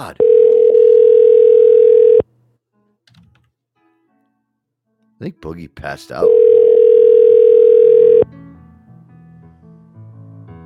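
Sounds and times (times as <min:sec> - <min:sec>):
speech: 0:00.0 - 0:00.3, 0:05.2 - 0:06.5
telephone dial tone from a phone call: 0:00.2 - 0:02.2, 0:06.3 - 0:08.2.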